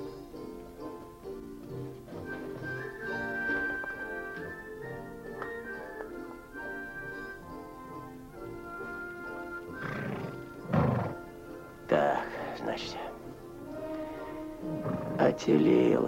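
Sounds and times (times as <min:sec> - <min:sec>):
quiet music: 0:00.0 - 0:16.0
horse neighing: 0:09.1 - 0:11.4, 0:13.8 - 0:15.5
speech: 0:15.4 - 0:16.0.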